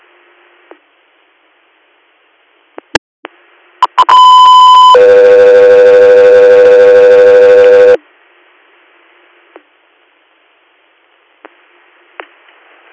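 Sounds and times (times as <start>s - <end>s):
two-part radio dispatch paging tone: 3.8s - 8.0s.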